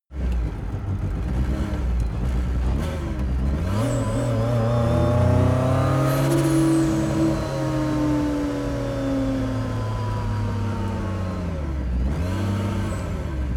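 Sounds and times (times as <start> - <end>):
Lancia S4 car engine idling, accelerating and decelerating: 0.1 - 13.5.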